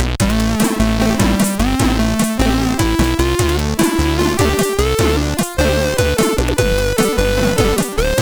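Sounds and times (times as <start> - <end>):
bossa nova music on CSG8580R5 synth chip: 0.2 - 8.2.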